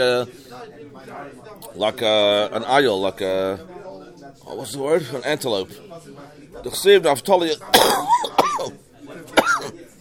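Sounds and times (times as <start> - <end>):
speech: 0.0 - 9.7
speaker coughing during a religious text lesson: 7.7 - 8.7, 9.4 - 9.7.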